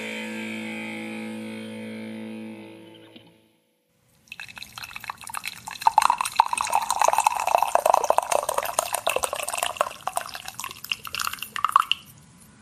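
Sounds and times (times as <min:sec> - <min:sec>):
coffee pouring into a cup: 0:04.2 - 0:12.1.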